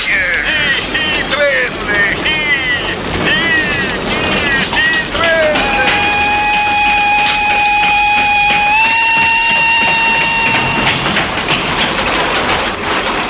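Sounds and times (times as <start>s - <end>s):
excited voices: 0.0s - 11.1s
train rumbling past: 0.0s - 13.2s
long steady train whistle blaring: 5.1s - 11.2s.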